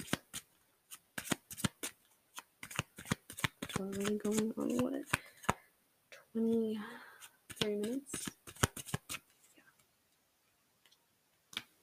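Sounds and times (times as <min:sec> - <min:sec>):
playing cards being shuffled and drawn: 0:00.0 - 0:05.6, 0:07.2 - 0:09.5
speech: 0:03.8 - 0:05.2, 0:06.3 - 0:08.3.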